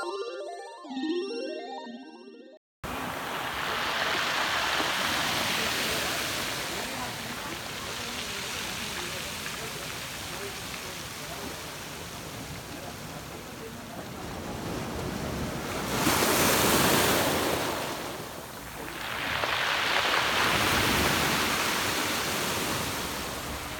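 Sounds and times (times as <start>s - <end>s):
musical chime: 0.0s - 2.6s
ocean waves washing onto the shore: 2.8s - 23.7s.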